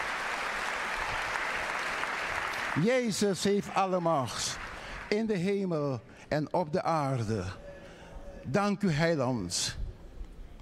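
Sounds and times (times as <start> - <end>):
church congregation applauding during a worship service: 0.0 - 5.8
speech: 2.8 - 7.6, 8.4 - 9.8.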